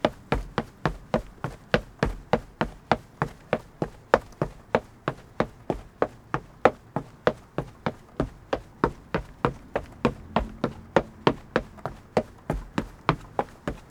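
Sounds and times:
running footsteps on wood: 0.0 - 13.8.

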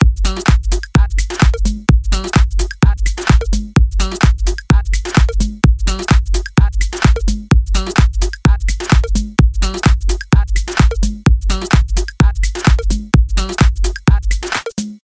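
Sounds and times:
house drum loop at 128 BPM: 0.0 - 15.0.

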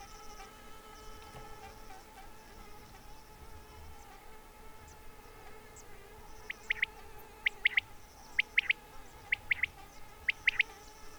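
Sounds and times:
steady background hum: 0.0 - 11.1
quail calling: 6.5 - 10.8.

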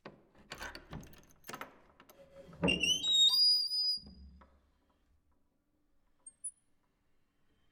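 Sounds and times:
old dungeon door in a castle opening and closing: 0.4 - 3.5.

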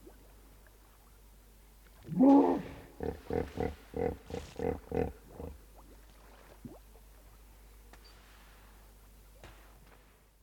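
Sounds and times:
hippopotamus short rhythmic grunts in the river: 2.1 - 5.6.

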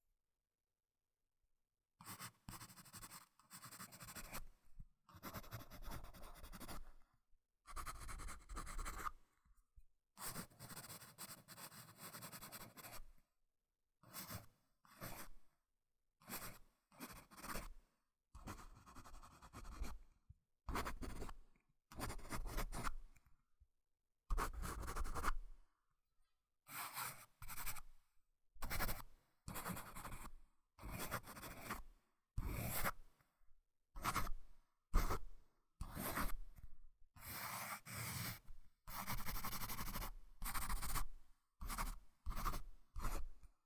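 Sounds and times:
writing with a pencil: 2.0 - 4.5, 5.2 - 6.9, 7.7 - 9.1, 10.3 - 13.1, 14.2 - 15.3, 16.3 - 17.8, 18.4 - 20.0, 20.7 - 21.4, 22.0 - 23.0, 24.3 - 25.4, 26.8 - 27.8, 28.6 - 31.8, 32.4 - 33.0, 35.0 - 36.4, 37.2 - 43.3.

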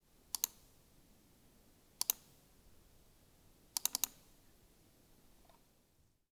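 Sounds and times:
mouse click: 0.3 - 0.6, 2.0 - 2.3, 3.8 - 4.2.

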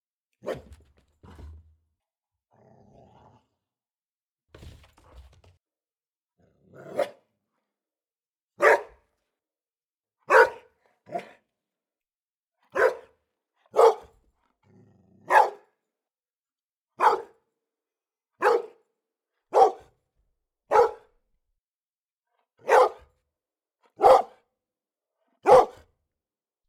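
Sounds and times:
dog barking: 0.4 - 0.7, 6.8 - 7.2, 8.6 - 9.0, 10.2 - 11.4, 12.7 - 14.1, 15.2 - 15.8, 17.0 - 17.4, 18.4 - 18.8, 19.5 - 20.0, 20.7 - 21.2, 22.6 - 23.1, 23.9 - 24.5, 25.4 - 25.9.

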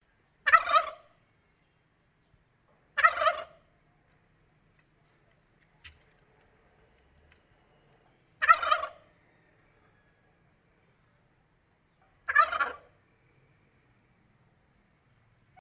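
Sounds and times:
turkey gobbling: 0.4 - 1.2, 2.9 - 3.8, 5.7 - 7.4, 8.0 - 10.1, 12.1 - 13.0.

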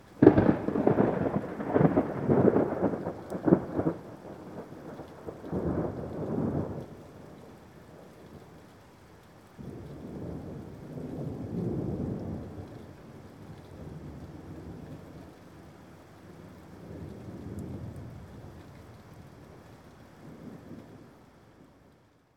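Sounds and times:
exploding thunder with resonance: 0.2 - 6.8.

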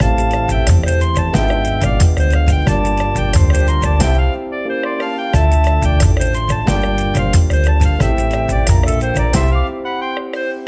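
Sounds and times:
samba game music loop: 0.0 - 4.4, 5.0 - 9.8.

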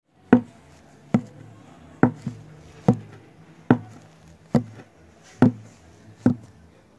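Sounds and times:
footsteps on wooden floor: 0.4 - 0.6, 2.0 - 6.5.

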